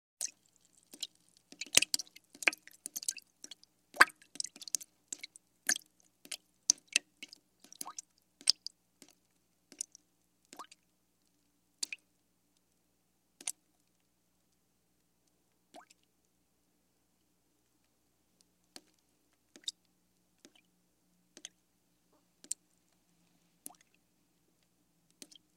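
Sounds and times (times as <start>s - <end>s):
heavy drips falling into water: 0.2s - 10.8s.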